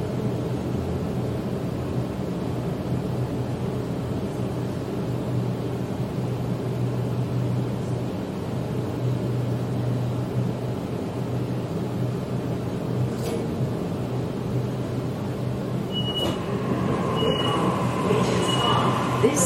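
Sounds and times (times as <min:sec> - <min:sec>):
low droning hum inside commuter train carriage: 0:00.0 - 0:19.4
commuter train rumbling heard from inside the carriage in Sydney: 0:11.8 - 0:19.4
brief high squeals of commuter train: 0:15.9 - 0:19.4.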